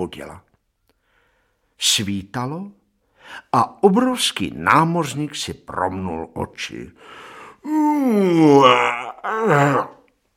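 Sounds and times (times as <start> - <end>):
speech: 0.0 - 0.5, 1.8 - 10.0
voice acting out a giant's huge drawn-out yawn: 7.5 - 10.1.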